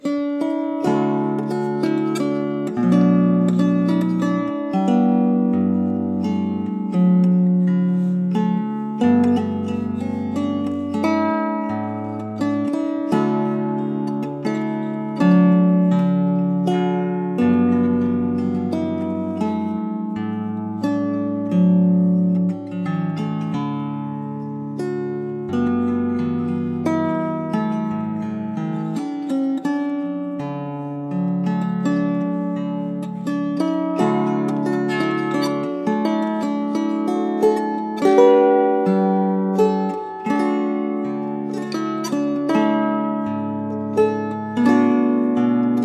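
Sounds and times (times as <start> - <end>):
small alto lyre: 0.0 - 45.8.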